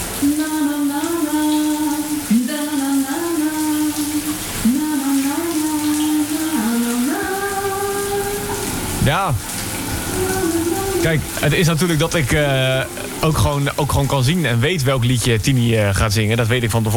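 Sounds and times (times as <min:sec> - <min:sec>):
water streaming from a tap: 0:00.0 - 0:16.9
speech: 0:11.0 - 0:16.9.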